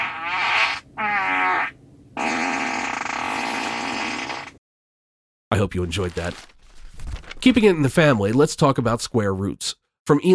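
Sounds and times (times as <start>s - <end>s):
buzzy fart sound effects: 0.0s - 4.6s
speech: 5.6s - 6.6s, 7.4s - 10.3s.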